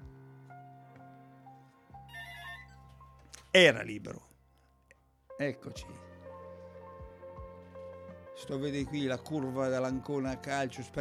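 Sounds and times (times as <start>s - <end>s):
telephone ringing with an incoming call: 2.1s - 3.1s
speech: 3.6s - 4.3s, 5.4s - 6.1s, 8.4s - 10.9s.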